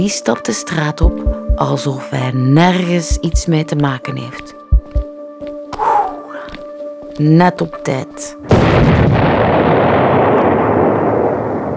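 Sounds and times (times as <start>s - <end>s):
speech: 0.0s - 4.6s, 7.2s - 9.0s
large store of dynamite exploding at a school: 8.5s - 11.7s.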